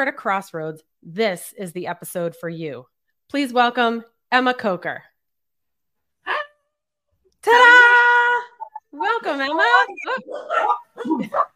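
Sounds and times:
speech: 0.0 - 5.1, 7.4 - 7.8, 8.9 - 11.5
dogs barking with yappy whiny calls: 9.6 - 11.5.

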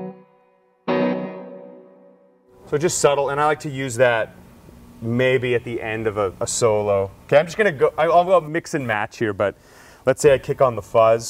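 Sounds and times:
electric guitar chord through plate reverb boost with amp reverb and slapback: 0.0 - 2.5
speech: 2.7 - 4.4, 5.0 - 11.2.

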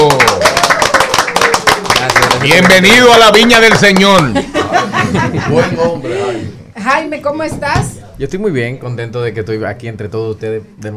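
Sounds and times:
small group clapping: 0.0 - 4.4
speech: 2.4 - 10.9
laughter: 4.0 - 6.5.

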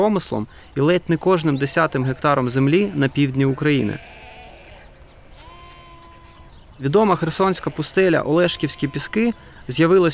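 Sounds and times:
speech: 0.0 - 4.2, 6.8 - 10.1
sheep bleating: 1.4 - 9.5.

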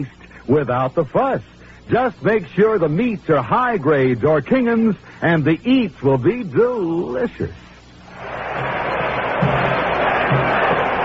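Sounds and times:
speech: 0.0 - 7.7
huge crowd roaring at a football game in a stadium: 8.1 - 11.0.

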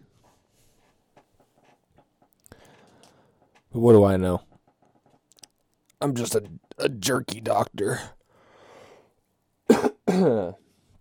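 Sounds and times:
speech: 3.8 - 4.5, 6.0 - 8.2, 10.1 - 10.6
coughing: 9.7 - 10.6.

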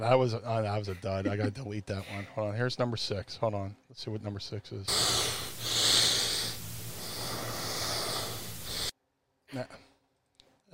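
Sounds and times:
speech: 0.0 - 5.5, 9.5 - 9.8
low electrical hum: 0.0 - 8.9
heavy breathing in a played recording: 4.9 - 8.9.

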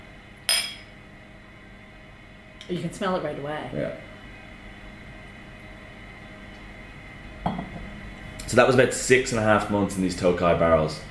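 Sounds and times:
whiskey glasses clinking in a toast: 0.5 - 0.9
speech: 2.7 - 4.1, 8.5 - 11.0.

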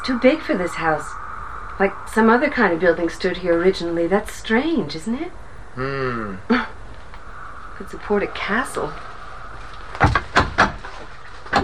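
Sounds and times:
speech: 0.0 - 1.2, 1.8 - 6.8, 7.8 - 9.1
loose wooden house door falling off its hinges: 10.0 - 11.6.

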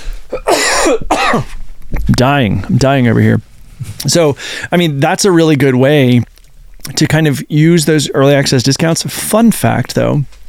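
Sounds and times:
harsh raspy coughs: 0.3 - 1.6
speech: 0.8 - 10.4.

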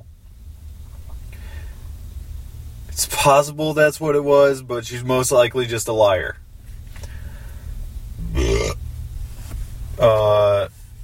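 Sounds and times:
low hum: 0.0 - 11.0
speech: 3.0 - 6.4
person burping after coffee: 8.2 - 8.8.

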